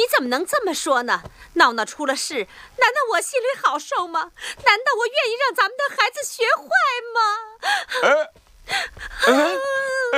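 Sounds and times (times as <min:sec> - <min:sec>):
speech: 0:00.0 - 0:10.1
woman crying with wails and sobs: 0:07.4 - 0:10.1.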